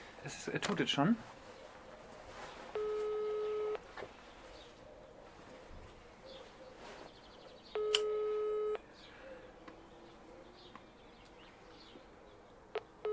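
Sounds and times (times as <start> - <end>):
speech: 0.2 - 1.4
phone line ringback tone: 2.7 - 3.8, 7.8 - 8.8, 12.8 - 13.1.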